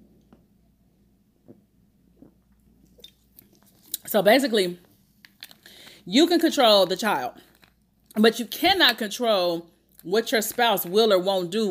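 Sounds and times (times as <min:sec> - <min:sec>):
sipping a sparkling water drink: 0:01.4 - 0:04.2
speech: 0:04.1 - 0:04.8, 0:06.1 - 0:07.4, 0:08.2 - 0:11.6.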